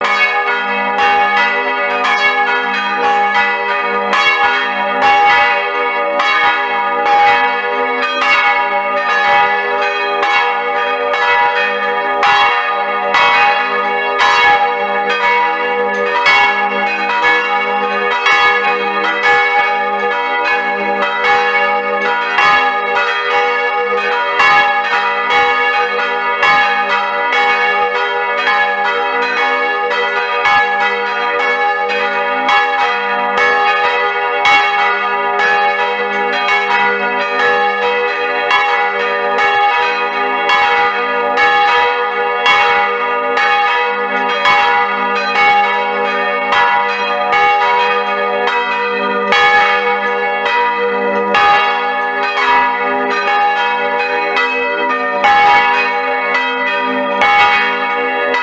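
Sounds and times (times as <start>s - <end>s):
bells ringing: 0.0s - 58.4s.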